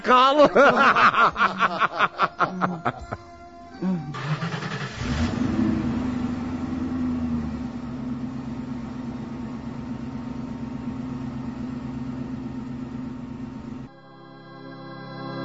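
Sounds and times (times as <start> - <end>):
snickering laughter: 0.0 - 4.4
speech: 0.0 - 4.4
car engine starting, revving and accelerating at night in the Belgrad forests: 3.8 - 13.9.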